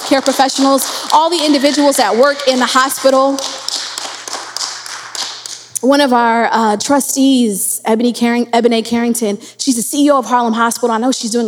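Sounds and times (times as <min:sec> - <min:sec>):
group applause: 0:00.0 - 0:05.7
speech: 0:00.1 - 0:03.6, 0:05.8 - 0:11.4.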